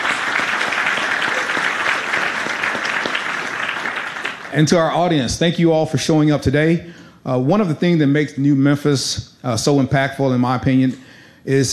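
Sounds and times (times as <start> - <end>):
audience applause: 0.0 - 5.0
speech: 4.5 - 11.7.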